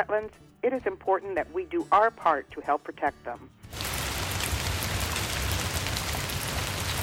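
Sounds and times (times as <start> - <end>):
speech: 0.0 - 3.8
steady rain pattering on a hard surface: 3.7 - 7.0.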